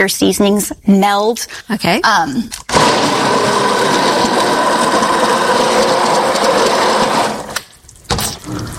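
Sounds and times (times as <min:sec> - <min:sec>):
speech: 0:00.0 - 0:04.0
blender pureeing hot vegetable soup: 0:02.7 - 0:07.6.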